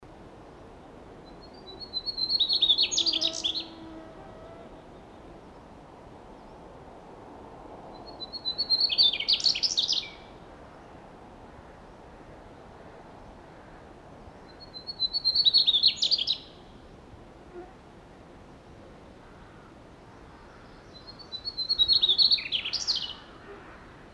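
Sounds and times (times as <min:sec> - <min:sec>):
Mmugimakii birdsong: 0:01.2 - 0:04.0, 0:08.0 - 0:10.3, 0:14.3 - 0:16.6, 0:19.3 - 0:24.1.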